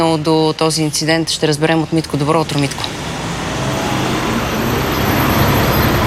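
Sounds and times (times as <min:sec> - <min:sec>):
city street traffic at a pedestrian crossing in the centre of Veliko Tarnovo: 0:00.0 - 0:06.0
speech: 0:00.2 - 0:03.0.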